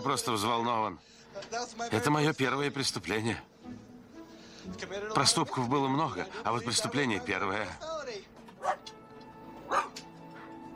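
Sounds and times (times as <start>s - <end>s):
speech: 0.0s - 3.8s, 4.6s - 8.0s, 8.6s - 9.0s
terrier barking out of its cage: 8.6s - 8.9s, 9.6s - 10.7s.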